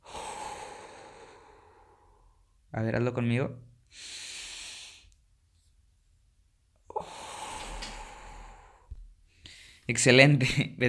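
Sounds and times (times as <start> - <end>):
full exhale during a breathing exercise: 0.0 - 2.4, 3.9 - 5.1, 6.9 - 9.8
slow deep inhale during a breathing exercise: 0.0 - 2.5, 3.9 - 5.2, 6.9 - 9.9
speech: 2.7 - 4.2, 9.9 - 10.8.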